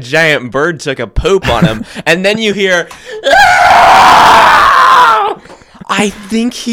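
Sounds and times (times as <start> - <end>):
speech: 0.0 - 4.7, 5.9 - 6.7
man screaming as liquid marshmallow goop falls on him: 3.1 - 5.4.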